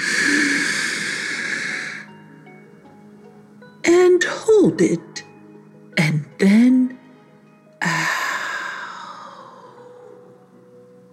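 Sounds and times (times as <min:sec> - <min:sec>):
slow deep inhale as a calming breathing exercise: 0:00.0 - 0:02.2, 0:07.8 - 0:10.3
speech: 0:04.2 - 0:05.1, 0:06.4 - 0:06.9.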